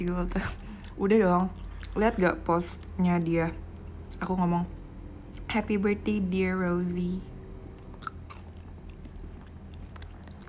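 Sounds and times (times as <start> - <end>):
speech: 0.0 - 3.6, 4.2 - 4.8, 5.5 - 7.3
crunchy food being bitten and chewed: 0.6 - 3.0, 7.3 - 10.4.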